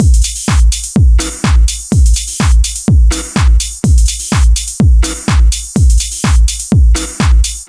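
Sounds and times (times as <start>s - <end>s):
drum loop: 0.0s - 7.6s.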